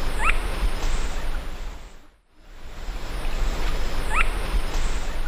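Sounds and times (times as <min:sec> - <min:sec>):
Hoploxypterus cayanus calling in South American Eastern Lowlands: 0:00.2 - 0:01.3, 0:03.7 - 0:05.2.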